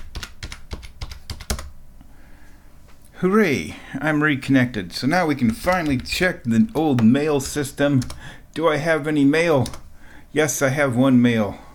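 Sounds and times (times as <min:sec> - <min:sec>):
typing a password on a computer keyboard: 0:00.0 - 0:01.8, 0:05.5 - 0:06.2, 0:07.0 - 0:08.2, 0:09.6 - 0:09.8
speech: 0:03.2 - 0:11.6.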